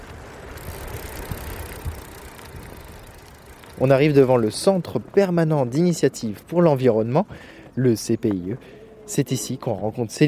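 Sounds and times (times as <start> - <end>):
rental bicycle frame rattling and clicking: 0.0 - 6.5
rental bicycle tires rumbling outdoors on an island: 0.0 - 10.2
wind: 0.0 - 10.2
speech: 3.8 - 10.2.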